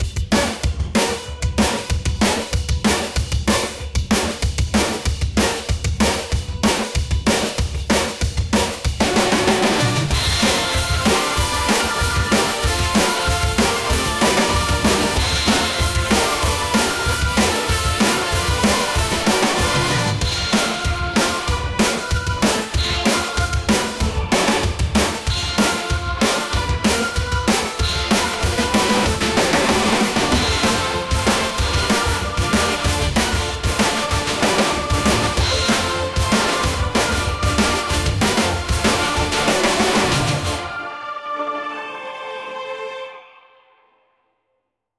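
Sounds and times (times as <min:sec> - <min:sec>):
aggressive drum and bass drums at 190 bpm: 0:00.0 - 0:40.6
epic organ chorale: 0:09.3 - 0:43.3.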